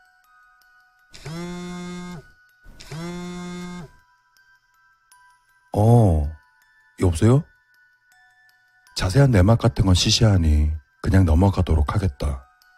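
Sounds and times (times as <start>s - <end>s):
phone ringing with a steady electronic tone: 1.2s - 4.0s
speech: 7.1s - 7.5s, 9.0s - 12.4s.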